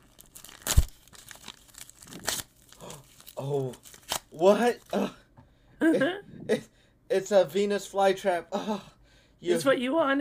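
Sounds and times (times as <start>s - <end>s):
wrapping paper being ripped off a gift: 0.0s - 5.0s
speech: 3.4s - 5.2s, 5.8s - 6.6s, 7.2s - 10.1s.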